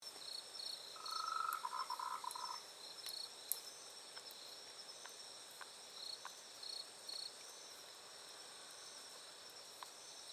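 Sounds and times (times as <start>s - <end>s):
steady high insect buzz: 0.1s - 10.3s
frog calling a short rapid trill in the evening: 1.0s - 2.6s.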